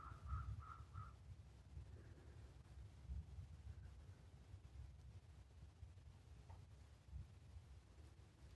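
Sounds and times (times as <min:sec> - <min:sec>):
crows cawing: 0:00.0 - 0:01.2
steady low outdoor rumble: 0:00.0 - 0:08.5.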